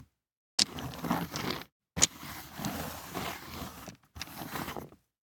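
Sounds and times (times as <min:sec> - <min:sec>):
four dice sliding on neoprene: 0:00.6 - 0:04.6.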